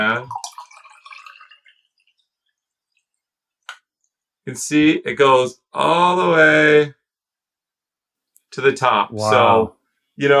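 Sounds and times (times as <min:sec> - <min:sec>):
speech: 0:00.0 - 0:00.4, 0:04.5 - 0:07.0, 0:08.5 - 0:10.3
wine pouring into a glass: 0:00.0 - 0:03.2
quiet drips of wine: 0:00.0 - 0:04.4.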